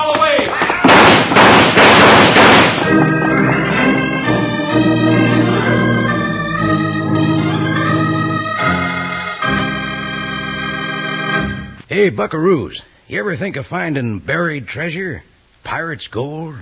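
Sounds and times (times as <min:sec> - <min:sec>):
gunfire in a western shootout: 0:00.4 - 0:04.4
music: 0:02.8 - 0:11.8
speech: 0:12.0 - 0:16.5.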